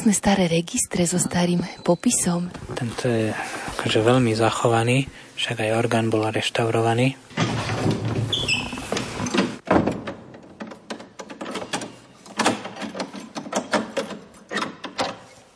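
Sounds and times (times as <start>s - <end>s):
speech: 0.0s - 8.1s
door latch and frame clicking and rattling: 7.3s - 15.3s
heavy tower door creaking and shutting: 7.3s - 15.3s.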